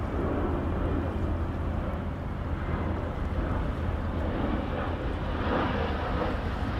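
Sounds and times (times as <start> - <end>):
airplane flying overhead on its way in to land at an airport: 0.0 - 6.7.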